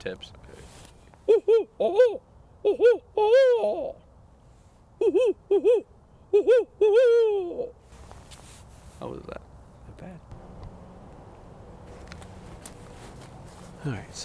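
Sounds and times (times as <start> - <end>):
speech: 0.0 - 0.7, 1.3 - 4.0, 5.0 - 7.8, 9.0 - 10.2, 13.8 - 14.2
person imitating a barn owl call: 1.3 - 4.0, 5.0 - 7.8.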